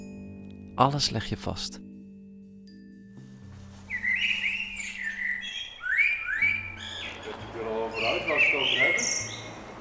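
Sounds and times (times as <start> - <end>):
speech: 0.8 - 1.9
caged songbird singing warbling whistles and rising chirps: 3.8 - 9.7.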